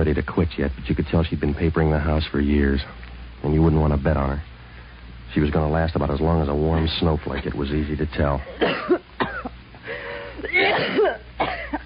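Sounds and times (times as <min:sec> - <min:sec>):
speech: 0:00.0 - 0:04.5, 0:05.3 - 0:09.3
low steady hum: 0:00.0 - 0:11.8
person coughing in harsh rasping bursts: 0:08.4 - 0:09.6, 0:10.4 - 0:11.8.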